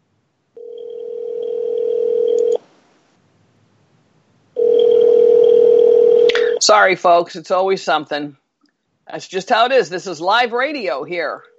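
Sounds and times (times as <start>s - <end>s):
telephone dialing tone: 0.6s - 2.6s, 4.6s - 6.6s
speech: 6.7s - 8.4s, 9.1s - 11.5s.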